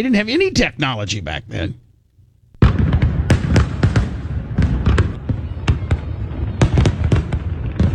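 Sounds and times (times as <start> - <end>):
speech: 0.0 - 1.8
fireworks exploding over a city bridge: 2.6 - 7.9.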